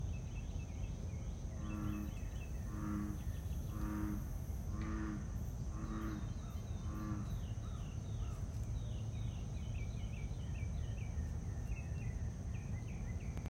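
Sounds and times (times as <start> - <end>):
birds singing: 0.0 - 13.4
bullfrog calling: 1.6 - 7.9.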